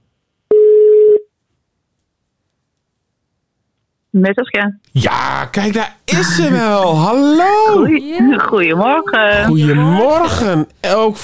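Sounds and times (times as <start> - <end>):
telephone ringing tone while a call is placed: 0.5 - 1.2
speech: 4.2 - 11.2.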